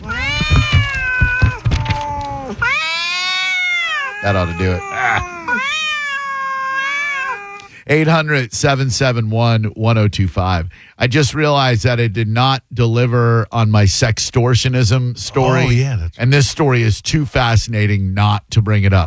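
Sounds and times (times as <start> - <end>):
cats meowing and yowling: 0.0 - 7.7, 15.3 - 15.8
speech: 4.2 - 5.4, 7.9 - 19.0.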